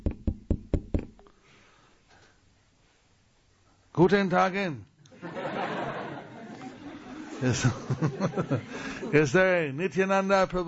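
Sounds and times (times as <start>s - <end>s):
firm knocking on a door: 0.0s - 1.2s
speech: 4.0s - 4.9s, 7.4s - 10.6s
laughter: 5.1s - 9.4s.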